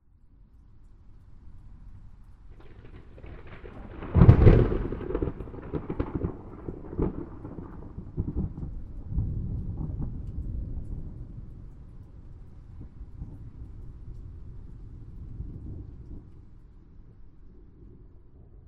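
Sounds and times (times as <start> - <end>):
crisp thunderclap: 2.5 - 16.6.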